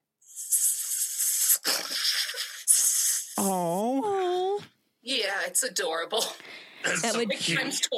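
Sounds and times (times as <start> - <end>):
person imitating the hissing of sleeping snakes: 0.2 - 3.7
speech: 5.2 - 7.9.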